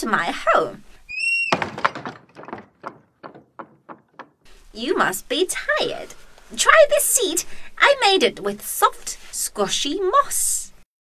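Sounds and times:
speech: 0:00.0 - 0:01.0, 0:04.8 - 0:10.7
door creak: 0:01.1 - 0:04.5
wooden door bang: 0:01.5 - 0:04.5
rattling knocks of settling door: 0:01.5 - 0:04.6.

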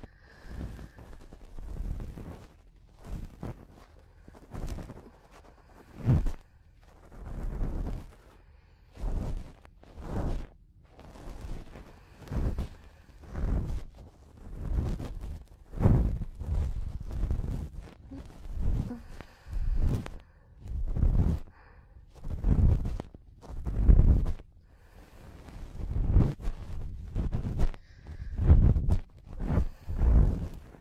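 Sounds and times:
faint breathing: 0:00.0 - 0:02.4, 0:03.0 - 0:09.5, 0:11.3 - 0:13.9, 0:18.0 - 0:23.0, 0:23.7 - 0:30.8
close-up ear cleaning with soft rubbing and scraping: 0:00.0 - 0:30.8.

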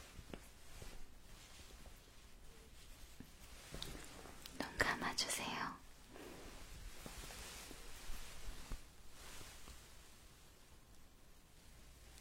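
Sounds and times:
faint rustles: 0:00.0 - 0:12.1
soft rubbing and brushing strokes of an ear massage: 0:00.0 - 0:12.1.

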